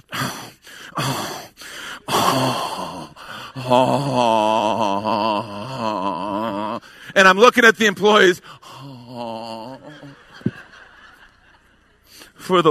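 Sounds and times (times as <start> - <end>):
voice imitating labored breathing with raspy gasping: 0.0 - 7.2, 8.4 - 10.3
speech: 1.0 - 1.4, 3.6 - 4.4, 7.2 - 8.6, 12.5 - 12.6
laughter: 9.1 - 12.5.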